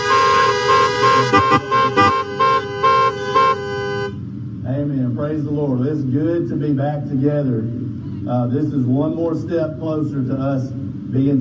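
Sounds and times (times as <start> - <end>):
audience honking car horns: 0.0 - 4.2
speech: 5.4 - 11.3.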